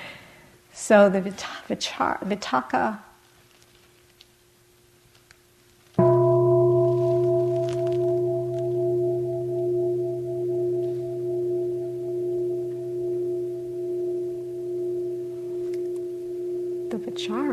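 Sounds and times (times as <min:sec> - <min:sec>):
speech: 0:00.9 - 0:03.1
Tibetan bell struck and ringing: 0:06.0 - 0:17.5.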